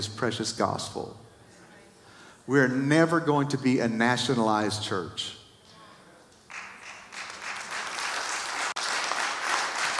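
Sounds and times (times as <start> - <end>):
speech: 0.0 - 1.2, 2.5 - 5.4
light polite golf clap applause from a crowd: 6.5 - 9.9.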